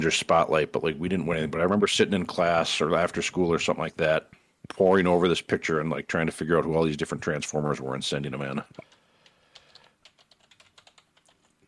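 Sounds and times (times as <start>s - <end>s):
speech: 0.0s - 8.9s
typing on a computer keyboard: 8.7s - 11.6s.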